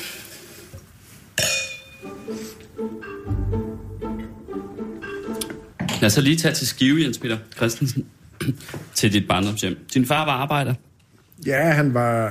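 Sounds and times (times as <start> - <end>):
glasses clinking in a toast: 1.4 - 2.3
speech: 6.0 - 12.2.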